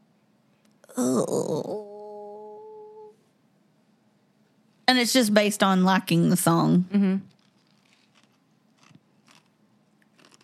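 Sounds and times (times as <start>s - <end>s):
speech: 1.0s - 1.9s, 4.9s - 7.3s
crunchy chewing: 7.3s - 10.4s.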